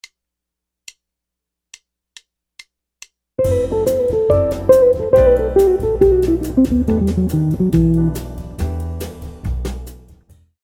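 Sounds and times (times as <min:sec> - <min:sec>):
Brazilian jazz guitar licks: 0:03.4 - 0:08.7.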